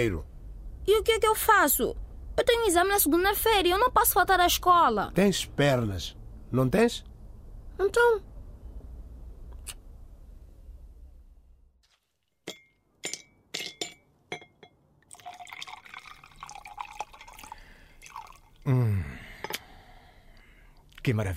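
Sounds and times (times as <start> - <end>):
speech: 0.0 - 7.1, 7.8 - 8.3, 21.0 - 21.3
ice cubes clinking in a glass: 15.1 - 18.6
whisky pouring and gurgling into a glass: 15.1 - 18.7.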